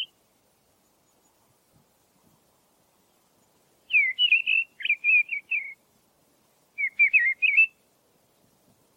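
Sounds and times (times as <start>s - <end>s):
mistle thrush giving fluty warbled phrases: 0.0s - 2.2s, 2.9s - 8.9s.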